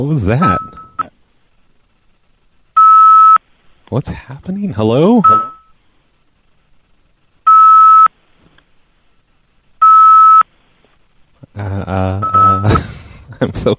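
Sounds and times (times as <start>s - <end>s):
speech: 0.0s - 0.8s, 3.9s - 5.6s, 11.6s - 13.7s
DTMF touch-tone dialing beeps from a phone: 0.4s - 1.1s, 2.8s - 3.4s, 5.2s - 5.7s, 7.5s - 8.1s, 9.8s - 10.4s, 12.2s - 12.8s.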